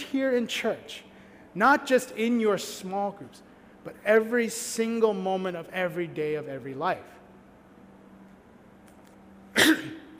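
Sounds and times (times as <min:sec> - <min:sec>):
speech: 0:00.1 - 0:07.2
person coughing into the microphone: 0:09.5 - 0:10.1.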